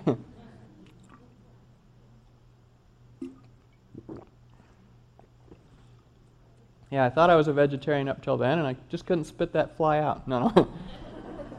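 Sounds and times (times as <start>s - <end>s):
speech: 0.0s - 0.2s, 7.0s - 11.0s
low steady hum: 0.0s - 11.5s
person drinking water with soft wet gulps and swallows: 0.8s - 1.3s, 3.2s - 6.4s
laughter: 10.4s - 11.5s.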